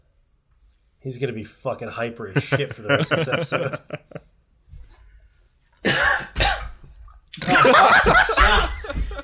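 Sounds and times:
speech: 1.0s - 4.3s
laughter: 2.3s - 4.3s, 7.4s - 9.2s
man coughing after first sip of energy drink: 5.8s - 6.8s, 7.4s - 9.2s.

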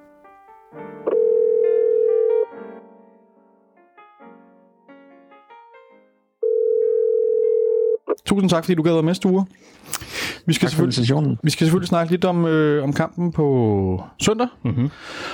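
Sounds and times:
telephone dial tone of outgoing call: 1.1s - 2.4s, 6.4s - 8.0s
speech: 8.2s - 15.3s.

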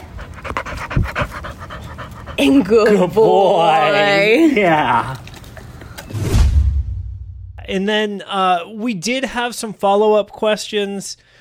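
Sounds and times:
foster dog panting rapidly: 0.0s - 3.0s
speech: 2.4s - 5.2s, 7.7s - 11.3s.

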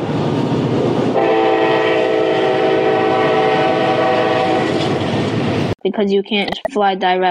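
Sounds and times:
train rumbling past: 0.0s - 5.8s
train horn blast: 1.2s - 5.0s
speech: 5.8s - 7.3s.

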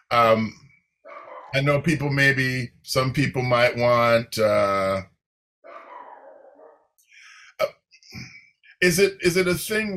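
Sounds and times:
speech: 0.1s - 0.6s, 1.5s - 5.1s, 7.6s - 9.9s
dog barking indoors in a room: 1.1s - 1.6s, 5.7s - 6.9s.

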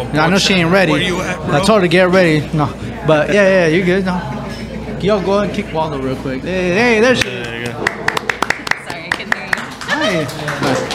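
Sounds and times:
speech: 0.1s - 4.4s, 5.0s - 7.4s, 10.1s - 10.8s
audience clapping: 7.1s - 10.9s.

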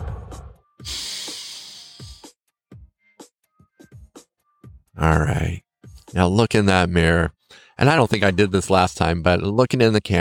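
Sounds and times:
long breathy exhale after a held deep breath during a breathing exercise: 0.8s - 2.3s
speech: 5.0s - 10.1s.

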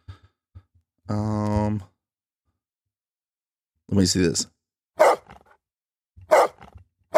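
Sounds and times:
speech: 1.1s - 1.9s, 3.9s - 4.6s
dog barking: 5.0s - 5.4s, 6.2s - 7.1s.

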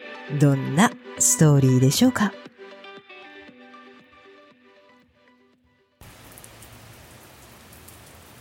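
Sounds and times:
speech: 0.3s - 2.4s
steady rain pouring: 6.0s - 8.4s.

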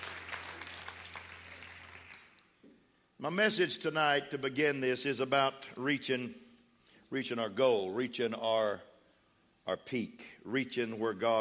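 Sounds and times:
congregation clapping: 0.0s - 2.6s
speech: 3.2s - 6.4s, 7.1s - 8.9s, 9.6s - 11.3s.

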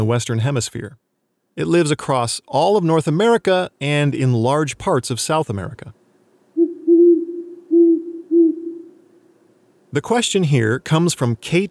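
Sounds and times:
speech: 0.0s - 6.0s, 9.9s - 11.6s
great horned owl Bubo virginianus hooting: 6.6s - 9.1s.

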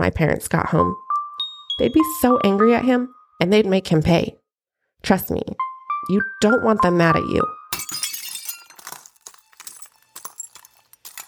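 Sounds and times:
speech: 0.0s - 1.0s, 1.8s - 4.4s, 5.0s - 7.9s
glass shards crunching and tinkling: 7.8s - 11.2s
window glass breaking: 7.8s - 11.2s.

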